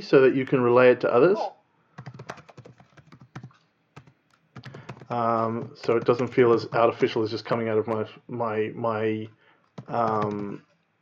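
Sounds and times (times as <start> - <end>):
speech: 0.0 - 2.2, 5.1 - 10.7
typing on a computer keyboard: 2.0 - 6.5, 9.6 - 10.6.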